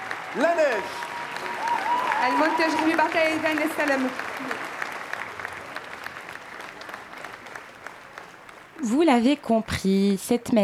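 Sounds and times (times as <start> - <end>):
cheers and whoops: 0.0 - 3.6
applause from a large crowd: 0.0 - 10.1
speech: 0.4 - 1.6, 2.2 - 4.6, 8.8 - 10.6.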